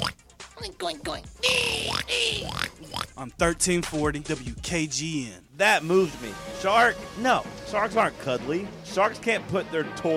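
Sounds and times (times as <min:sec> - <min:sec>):
person vocally imitating pig with nasal squealing oinks: 0:00.0 - 0:00.2, 0:01.4 - 0:03.2
speech: 0:00.6 - 0:10.1.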